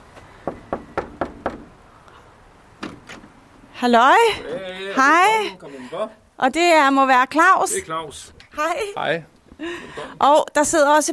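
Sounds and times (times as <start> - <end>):
knocking on a door: 0.4 - 1.7
speech: 3.8 - 11.1.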